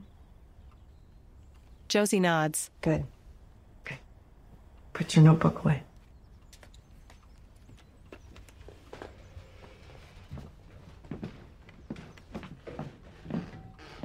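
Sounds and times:
low noise: 0:00.0 - 0:14.0
speech: 0:01.9 - 0:03.2, 0:05.0 - 0:05.9
footsteps walking into a living room: 0:07.7 - 0:14.0.

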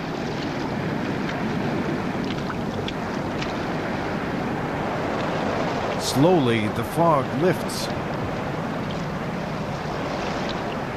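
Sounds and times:
steady wind rushing over open water: 0:00.0 - 0:10.9
speech: 0:06.1 - 0:08.1.

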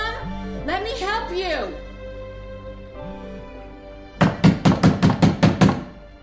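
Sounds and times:
speech: 0:00.7 - 0:01.9
hand pounding on a bedroom door: 0:04.2 - 0:06.0.

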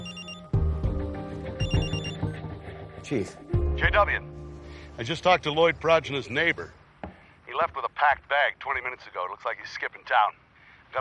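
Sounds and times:
telephone ringing with an electronic ringtone: 0:00.0 - 0:00.7, 0:01.5 - 0:02.5
speech: 0:03.0 - 0:04.4, 0:05.0 - 0:06.8, 0:07.6 - 0:10.9.

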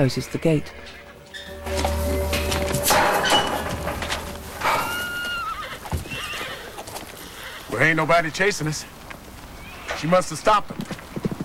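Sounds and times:
speech: 0:00.0 - 0:02.0, 0:07.8 - 0:09.0, 0:10.0 - 0:11.0
wild horses' clattering hooves: 0:00.9 - 0:11.4
wild horses neighing entering a temporary enclosure: 0:01.4 - 0:08.0, 0:08.8 - 0:10.2.

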